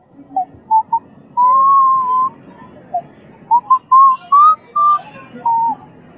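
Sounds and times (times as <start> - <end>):
person whistling a tune: 0.7 - 2.3, 3.5 - 5.8.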